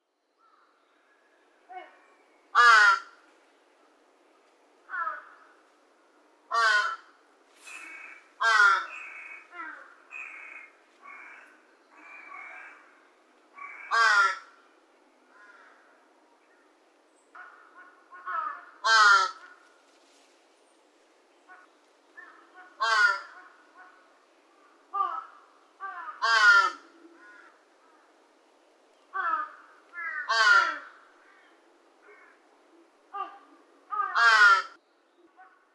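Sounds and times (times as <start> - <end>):
juvenile large-billed crow calling: 1.7 - 3.2, 4.9 - 5.6, 6.5 - 7.1, 7.7 - 14.6, 17.3 - 19.6, 21.5 - 28.2, 29.1 - 32.4, 33.1 - 34.8.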